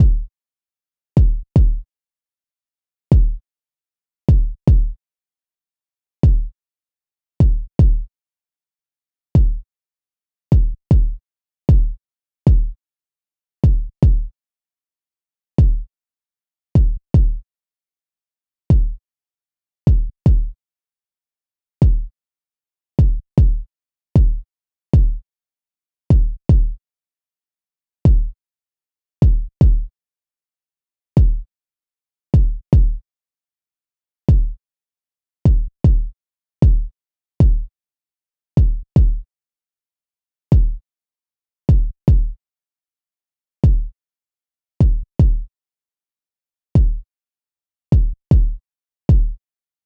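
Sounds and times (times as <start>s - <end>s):
kick drum: 0.0s - 0.3s, 1.2s - 1.9s, 3.1s - 3.4s, 4.3s - 5.0s, 6.2s - 6.6s, 7.4s - 8.1s, 9.4s - 9.6s, 10.5s - 12.8s, 13.6s - 14.3s, 15.6s - 15.9s, 16.8s - 17.4s, 18.7s - 19.0s, 19.9s - 20.6s, 21.8s - 22.1s, 23.0s - 24.4s, 25.0s - 25.2s, 26.1s - 26.8s, 28.1s - 28.4s, 29.2s - 29.9s, 31.2s - 31.5s, 32.4s - 33.0s, 34.3s - 34.6s, 35.5s - 37.7s, 38.6s - 39.3s, 40.5s - 40.8s, 41.7s - 42.4s, 43.6s - 43.9s, 44.8s - 45.5s, 46.8s - 47.1s, 47.9s - 49.4s.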